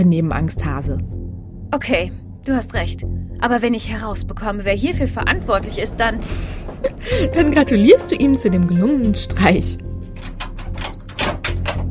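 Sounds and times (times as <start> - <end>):
speech: 0.0 - 9.9
low rumble: 0.0 - 10.4
heavy cellar door pulled open scraping and rattling: 4.8 - 11.8.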